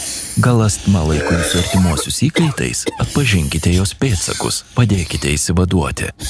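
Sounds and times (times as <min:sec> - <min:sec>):
speech: 0:00.4 - 0:06.2
little frog croaking: 0:01.1 - 0:02.1.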